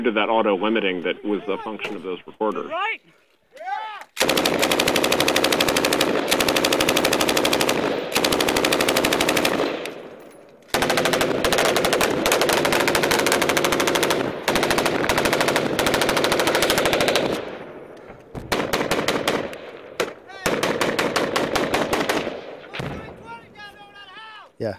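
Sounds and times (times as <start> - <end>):
speech: 0.0 - 4.6
automatic machine gun fire with huge booming reverb: 4.2 - 17.8, 18.4 - 23.2.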